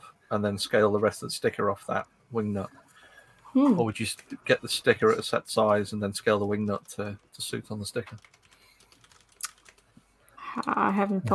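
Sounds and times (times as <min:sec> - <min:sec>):
speech: 0:00.3 - 0:02.8, 0:03.5 - 0:08.4, 0:10.6 - 0:11.3
typing on a computer keyboard: 0:08.0 - 0:09.9.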